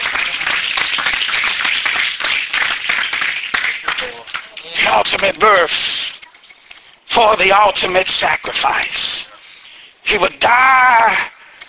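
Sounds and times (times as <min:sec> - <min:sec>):
audience clapping in praise: 0:00.0 - 0:06.2
speech: 0:04.9 - 0:06.1, 0:07.2 - 0:09.3, 0:10.1 - 0:11.3.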